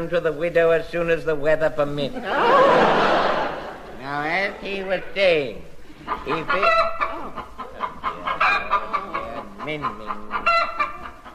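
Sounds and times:
speech: 0.0s - 3.3s, 4.0s - 7.0s, 9.7s - 10.5s
laughter: 2.1s - 4.7s, 5.9s - 10.5s
chicken clucking and squawking: 5.9s - 11.3s.

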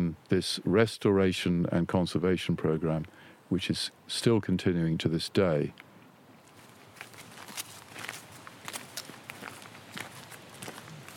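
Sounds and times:
speech: 0.3s - 5.9s
footsteps walking down a garden path: 6.4s - 11.1s.

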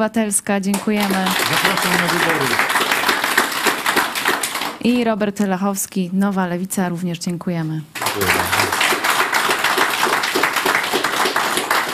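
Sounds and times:
speech: 0.0s - 2.8s, 4.8s - 8.6s
audience applause: 1.1s - 4.8s, 8.0s - 11.9s.

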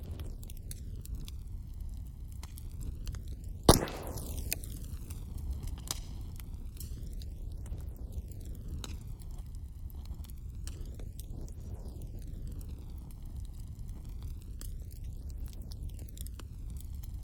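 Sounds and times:
bonfire burning with a steady low roar: 0.0s - 17.2s
small bonfire crackles: 0.0s - 17.2s
loud sharp pop from a bonfire: 3.7s - 4.7s.

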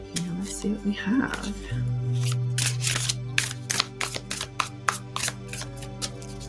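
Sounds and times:
speech: 0.6s - 2.4s
crystal card deck shuffled by hand: 1.3s - 6.4s.

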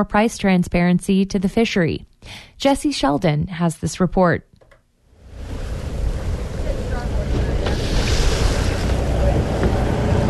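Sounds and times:
speech: 0.0s - 4.5s
fishing boat engine rumble on open water in Bristol Bay Alaska: 5.3s - 10.2s
sea wash: 5.4s - 10.2s.

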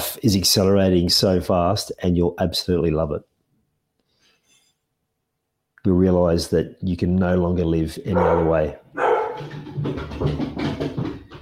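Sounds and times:
speech: 0.2s - 3.3s, 5.8s - 8.8s
dog barking excitedly in sharp yaps: 8.1s - 9.9s.

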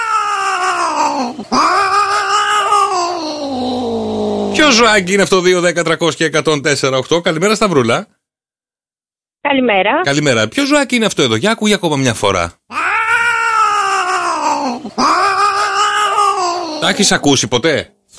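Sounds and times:
cats caterwauling while mating: 0.0s - 4.6s, 12.7s - 17.2s
speech: 1.2s - 1.8s, 4.7s - 8.2s, 9.4s - 12.8s, 14.7s - 15.2s, 16.8s - 18.0s.

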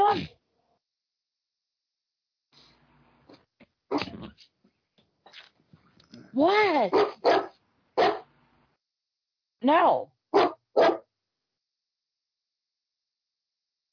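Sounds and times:
speech: 6.4s - 7.4s, 9.6s - 10.1s
dog giving sharp barks: 6.9s - 8.3s, 10.3s - 11.1s.

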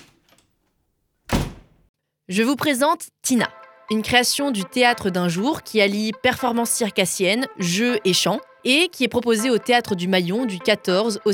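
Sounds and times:
door shutting with a loud thud: 0.0s - 0.4s, 1.3s - 1.8s
speech: 2.3s - 11.3s.

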